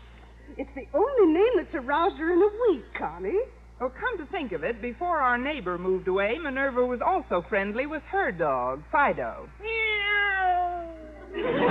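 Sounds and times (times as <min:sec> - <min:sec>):
speech: 0:00.5 - 0:09.8, 0:11.3 - 0:11.6
domestic cat meowing: 0:09.6 - 0:11.2
laughter: 0:11.2 - 0:11.6.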